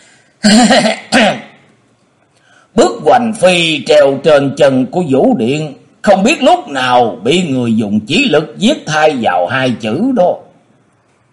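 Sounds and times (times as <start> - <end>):
speech: 0.4 - 1.3, 2.8 - 10.4
person clearing throat: 0.4 - 1.6.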